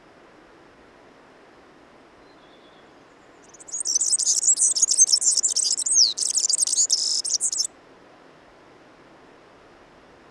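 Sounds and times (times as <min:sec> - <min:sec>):
faint background hiss: 0:00.0 - 0:10.3
European serin song: 0:03.5 - 0:07.7.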